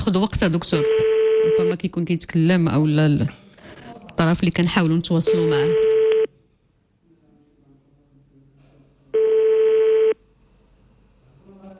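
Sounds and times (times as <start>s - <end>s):
speech: 0.0s - 3.4s, 4.2s - 5.9s
faint noise: 0.0s - 11.7s
ringback tone of an outgoing phone call: 0.8s - 1.7s, 5.3s - 6.3s, 9.2s - 10.2s.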